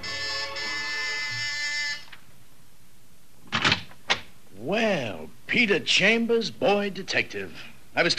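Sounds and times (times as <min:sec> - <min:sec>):
harsh electric door buzzer droning: 0:00.0 - 0:02.1
speech: 0:05.5 - 0:08.1.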